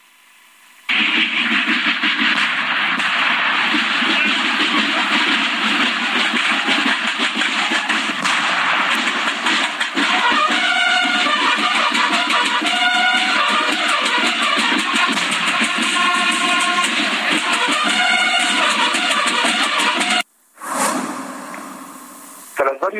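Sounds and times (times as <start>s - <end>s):
chaotic street commotion during a riot: 0.8s - 22.9s
firecrackers exploding during a riot: 0.9s - 22.5s
rushing burst: 0.9s - 22.7s
crowd shouting during a street riot: 3.0s - 20.2s.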